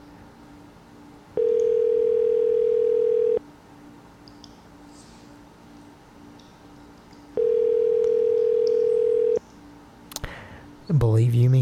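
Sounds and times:
telephone ringing tone while a call connects: 0:01.4 - 0:03.4, 0:07.4 - 0:09.4
speech: 0:11.1 - 0:11.6.

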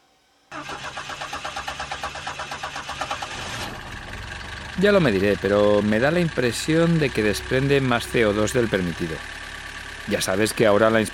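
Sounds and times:
car engine starting and idling: 0:00.5 - 0:11.1
speech: 0:04.8 - 0:09.4, 0:10.1 - 0:11.1.

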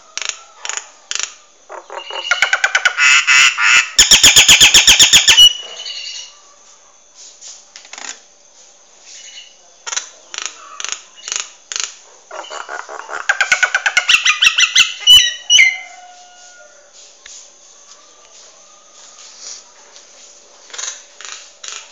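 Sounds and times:
Nias hill myna squawky chatter: 0:01.2 - 0:06.3, 0:09.3 - 0:15.9
Nias hill myna short chirps: 0:01.7 - 0:06.4, 0:12.3 - 0:15.9.

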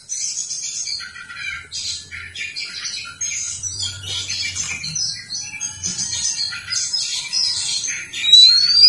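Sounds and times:
Oriental magpie-robin singing: 0:00.0 - 0:08.8.

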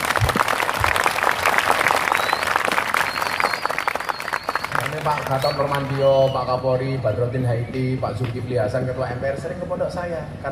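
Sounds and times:
audience applause: 0:00.0 - 0:06.4
speech: 0:05.0 - 0:10.5.

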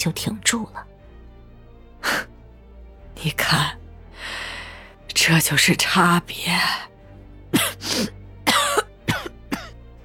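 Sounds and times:
speech: 0:00.0 - 0:00.9, 0:03.2 - 0:04.4, 0:05.2 - 0:06.9
woman coughing violently: 0:07.5 - 0:09.8.

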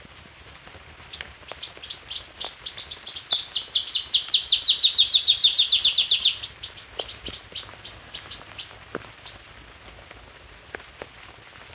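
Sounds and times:
black-crested warbler song of high sharp downslurred chips: 0:01.1 - 0:09.4.

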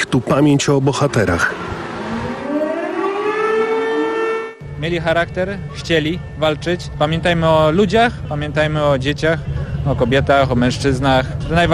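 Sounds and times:
speech: 0:00.1 - 0:01.7, 0:04.8 - 0:11.7
civil defense air raid sirens wailing during an uprising anniversary commemoration: 0:00.6 - 0:08.7.

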